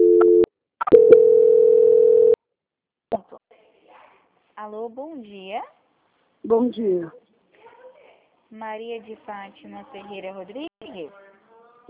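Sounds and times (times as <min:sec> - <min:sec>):
telephone call transfer tone: 0:00.0 - 0:02.4
speech: 0:04.7 - 0:05.8, 0:06.4 - 0:07.2, 0:08.5 - 0:11.2.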